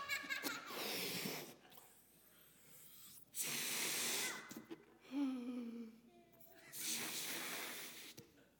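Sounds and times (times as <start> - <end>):
short burst of laughter: 0.0 - 0.8
forceful breathy puffs blowing up a balloon: 0.7 - 4.9, 6.8 - 8.2.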